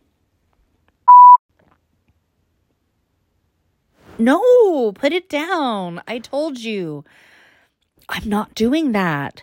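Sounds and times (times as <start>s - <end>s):
telephone electronic beep: 1.1s - 1.4s
speech: 4.2s - 7.3s, 8.0s - 9.4s.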